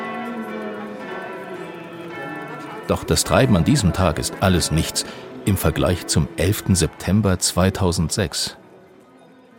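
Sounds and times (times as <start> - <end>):
church bells pealing at a pilgrimage site: 0.0 - 8.5
speech: 2.9 - 8.6.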